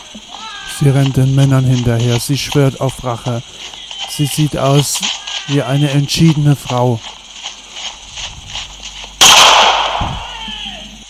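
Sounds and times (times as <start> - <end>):
speech: 0.8 - 7.2
loud gunshot fired by a woman: 9.2 - 10.3
low thud: 9.2 - 10.3.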